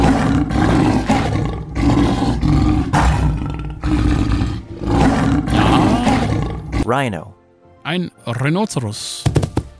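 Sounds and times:
leopard roaring: 0.0 - 6.9
speech: 6.9 - 9.5.

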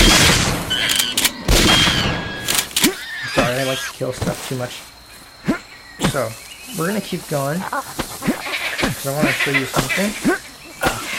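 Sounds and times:
rifle gunfire in a video game: 0.0 - 2.3
video game noise: 0.0 - 11.1
speech: 3.8 - 5.0, 6.1 - 10.5.

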